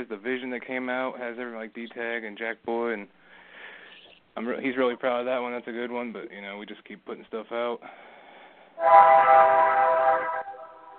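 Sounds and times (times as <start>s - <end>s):
speech: 0.0s - 3.2s, 4.4s - 8.1s, 8.8s - 10.5s
train horn blaring in the streets of New Orleans: 8.8s - 10.9s.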